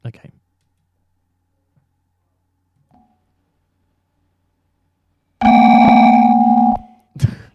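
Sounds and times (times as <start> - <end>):
electronic phone ringing tone as a call is placed: 5.4 - 6.9.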